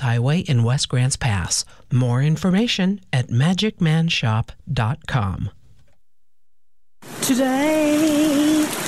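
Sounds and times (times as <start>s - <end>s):
speech: 0.0s - 5.6s, 7.0s - 8.8s
steady rain falling: 7.0s - 8.8s.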